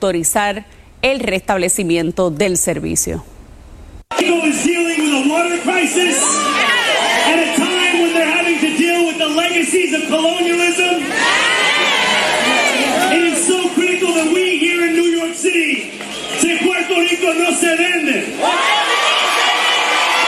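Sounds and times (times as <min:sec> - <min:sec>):
speech: 0:00.0 - 0:03.3, 0:05.4 - 0:08.3, 0:09.2 - 0:12.2, 0:16.8 - 0:18.9
applause: 0:04.1 - 0:05.0
crowd shouting and cheering: 0:04.1 - 0:20.2.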